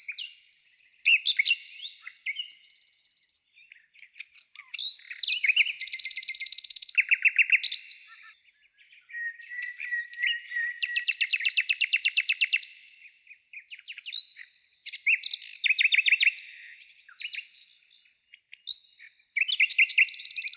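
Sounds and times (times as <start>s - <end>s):
nightingale song of varied phrases: 0.0s - 20.5s.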